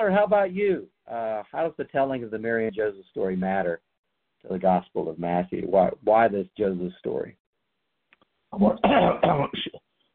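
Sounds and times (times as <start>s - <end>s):
speech: 0.0s - 7.4s, 8.5s - 9.8s
throat clearing and coughing: 8.6s - 9.8s.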